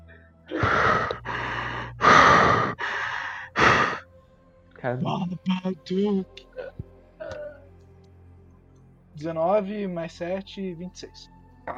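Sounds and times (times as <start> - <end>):
voice imitating heavy breathing behind a door: 0.5 - 4.0
speech: 4.8 - 6.5, 9.2 - 11.7.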